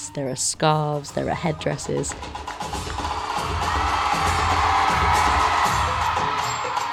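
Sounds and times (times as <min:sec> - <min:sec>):
speech: 0:00.1 - 0:02.5
huge theatre crowd roaring and cheering during a children's stage performance: 0:02.6 - 0:06.9.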